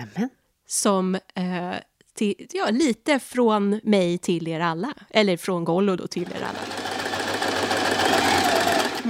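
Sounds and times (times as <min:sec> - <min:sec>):
speech: 0:00.0 - 0:06.8
sewing machine stitching a seam: 0:06.2 - 0:09.0.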